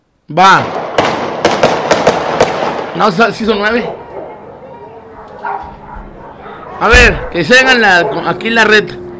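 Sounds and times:
steady noise: 0.0 - 9.1
speech: 0.3 - 0.8, 3.0 - 4.0, 6.8 - 9.0
gunshots: 0.5 - 3.5.

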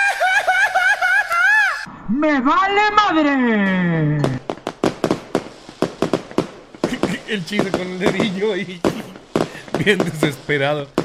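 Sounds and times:
laughter: 0.0 - 1.9, 6.9 - 10.6
speech: 2.1 - 4.3, 7.3 - 9.0, 9.8 - 11.0
firecrackers being set off: 4.2 - 11.0.

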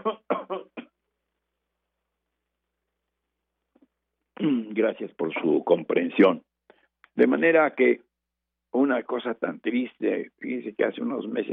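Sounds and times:
person coughing: 0.0 - 1.0
speech: 4.8 - 6.5, 7.2 - 8.0, 8.7 - 11.5.

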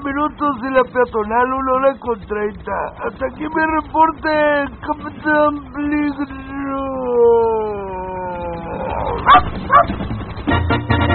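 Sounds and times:
drawn-out sliding howl-like tone: 0.0 - 10.6
speech: 0.2 - 6.4, 9.2 - 10.2
dog barking: 9.2 - 10.0.

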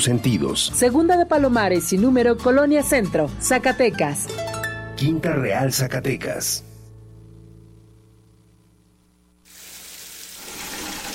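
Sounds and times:
speech: 0.0 - 6.7
low steady hum: 6.2 - 9.5
hot water pouring and splashing into a bucket: 9.5 - 11.1.

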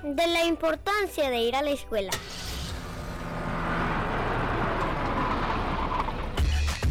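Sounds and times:
speech: 0.0 - 2.4
car engine starting and revving: 2.1 - 6.8.

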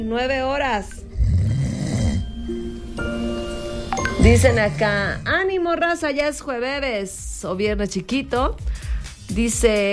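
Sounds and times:
speech: 0.1 - 1.0, 4.2 - 9.9
sleeping person snoring: 1.1 - 2.5.

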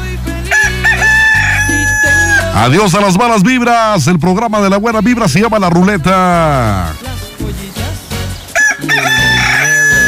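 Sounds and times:
rooster crowing: 0.5 - 2.6, 8.5 - 10.0
speech: 2.6 - 7.0.

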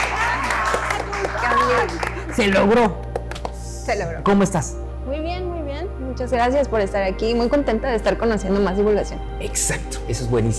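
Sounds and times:
group applauding: 0.0 - 3.8
speech: 2.4 - 3.0, 3.9 - 5.2, 6.2 - 10.5.

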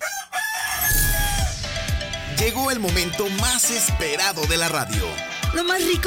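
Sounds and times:
rooster crowing cock-a-doodle-doo: 0.0 - 1.7
low rumble: 0.9 - 3.2
speech: 2.6 - 6.0.

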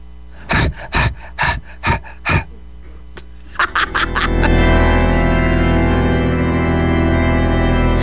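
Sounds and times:
heavy panting after running: 0.3 - 3.6
loud sustained droning sound: 0.4 - 8.0
laughter: 0.5 - 4.9.

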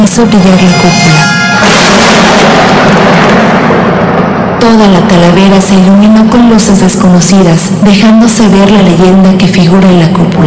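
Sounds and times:
speech: 0.1 - 2.6, 4.6 - 10.4
lightning thunder crashing with a rumbling low end: 1.4 - 7.3.

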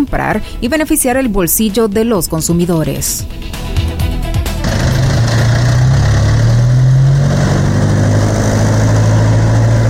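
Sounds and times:
speech: 0.1 - 3.8
loaded truck engines idling: 3.3 - 9.8.

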